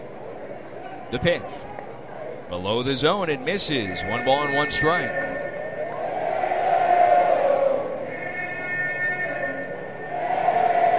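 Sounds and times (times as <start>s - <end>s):
speech: 1.1s - 1.8s, 2.5s - 5.3s
large baseball stadium crowd roaring and murmuring: 3.9s - 10.9s
baseball stadium crowd cheering: 5.6s - 8.3s, 9.2s - 10.9s.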